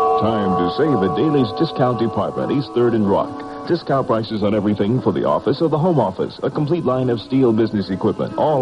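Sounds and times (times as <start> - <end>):
radio time signal chime of sustained electronic tones: 0.2 - 4.3
speech: 0.2 - 8.6.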